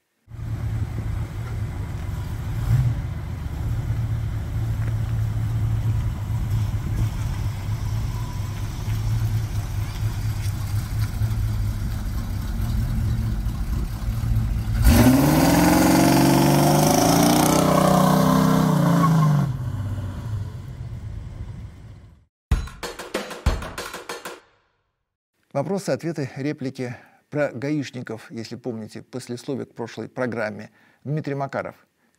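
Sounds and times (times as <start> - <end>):
rare car 3-litre 142-horsepower engine idling and revving: 0.3 - 21.0
speech: 25.6 - 32.1.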